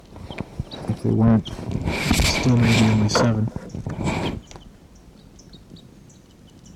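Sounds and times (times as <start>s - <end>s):
wild birds chirping high: 0.0s - 6.7s
rushing burst of noise: 0.1s - 4.9s
speech: 1.0s - 4.2s.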